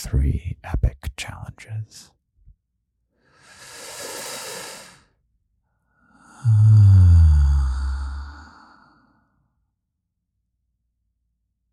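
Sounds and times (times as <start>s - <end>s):
speech: 0.0s - 2.2s
deep breath during a guided calming exercise: 3.1s - 9.5s.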